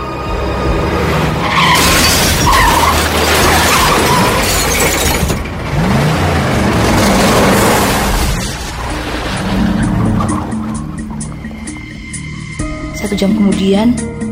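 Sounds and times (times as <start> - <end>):
tires screeching in a long skid: 0.2 - 12.4
car crashing into a tree: 0.8 - 11.7
debris shattering: 1.5 - 11.1
speech: 13.2 - 14.2.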